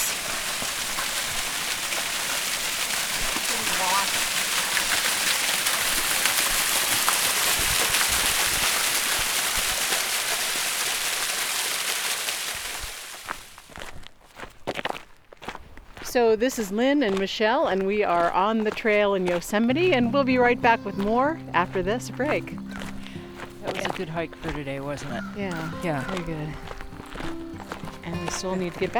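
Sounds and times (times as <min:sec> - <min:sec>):
small waterfall rushing over rocks: 0:00.0 - 0:13.8
speech: 0:16.2 - 0:22.6, 0:24.0 - 0:26.7, 0:28.3 - 0:28.9.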